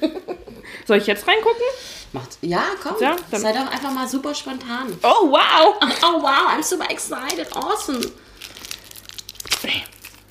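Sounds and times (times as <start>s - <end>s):
speech: 0.9s - 8.3s
plastic foil wrapping crinkling as it is unwrapped: 2.8s - 10.2s.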